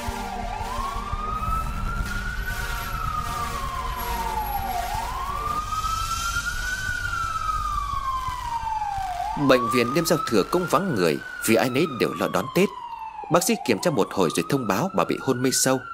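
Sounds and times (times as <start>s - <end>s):
ambulance siren wailing as it rushes a patient to emergency care: 0.0s - 15.9s
speech: 9.4s - 15.9s.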